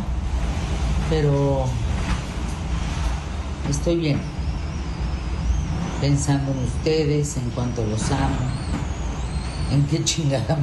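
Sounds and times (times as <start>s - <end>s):
howling hurricane wind roaring outside: 0.0s - 10.6s
speech: 1.1s - 1.8s, 3.7s - 4.4s, 6.0s - 8.7s, 9.7s - 10.6s.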